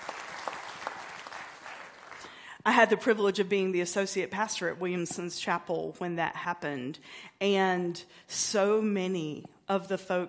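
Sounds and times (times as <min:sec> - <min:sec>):
audience clapping: 0:00.0 - 0:02.4
speech: 0:02.6 - 0:10.2.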